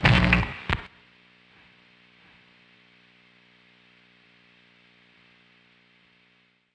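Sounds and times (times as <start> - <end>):
guitar pickup: 0.0 - 0.9.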